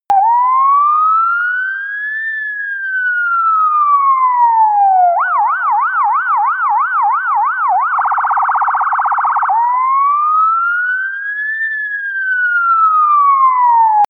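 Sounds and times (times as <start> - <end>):
UK ambulance siren: 0.1 - 14.0.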